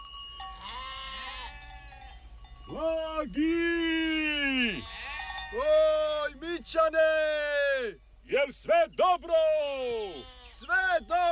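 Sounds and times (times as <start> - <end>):
sheep bleating on a farm during lambing: 0.6 - 2.0, 4.1 - 7.2, 9.9 - 11.3
speech: 2.7 - 3.8, 6.6 - 10.3.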